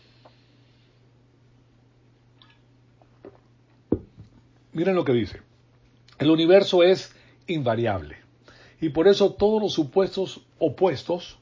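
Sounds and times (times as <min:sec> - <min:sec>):
speaker sipping water during a talk: 0:02.4 - 0:03.6
person swallowing: 0:02.4 - 0:04.1
speech: 0:04.8 - 0:05.5, 0:06.2 - 0:08.2, 0:08.8 - 0:11.3.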